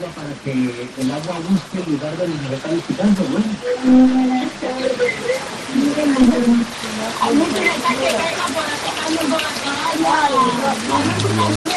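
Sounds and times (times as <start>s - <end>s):
steady rain pattering on a hard surface: 0.0s - 11.7s
voices talking: 0.0s - 11.7s.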